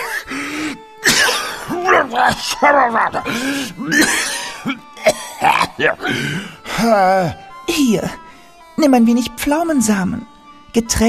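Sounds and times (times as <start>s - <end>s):
person in a prolonged coughing fit: 1.0s - 6.2s
throat clearing: 1.0s - 6.2s
strained groaning: 1.4s - 7.4s
speech: 2.1s - 4.8s, 5.8s - 8.2s, 8.8s - 11.0s.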